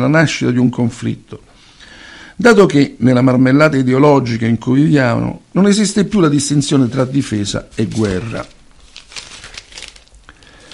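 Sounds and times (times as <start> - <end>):
speech: 0.0 - 1.5, 2.4 - 8.6
paper page being turned: 6.7 - 10.7.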